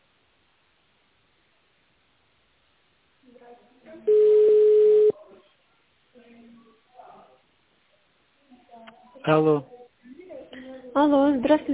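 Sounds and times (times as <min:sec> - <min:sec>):
speech: 0:03.5 - 0:04.3, 0:08.8 - 0:09.7, 0:10.9 - 0:11.7
telephone keypad tone dialing an extension on an automated office phone line: 0:04.1 - 0:05.1.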